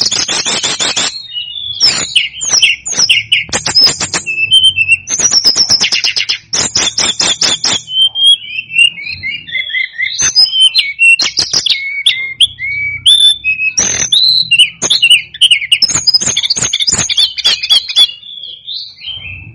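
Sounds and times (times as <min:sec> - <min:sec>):
snowy-browed flycatcher singing: 0:00.0 - 0:19.3.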